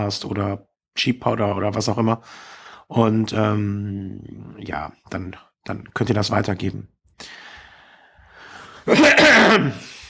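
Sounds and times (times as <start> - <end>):
speech: 0.0 - 7.5, 8.8 - 10.0
person coughing: 8.9 - 9.9.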